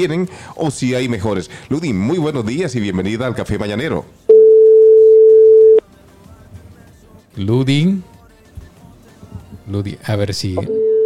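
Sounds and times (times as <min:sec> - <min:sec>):
speech: 0:00.0 - 0:04.2, 0:07.4 - 0:08.1, 0:09.7 - 0:10.8
steady telephone line tone during a call: 0:04.3 - 0:05.8, 0:10.6 - 0:11.0.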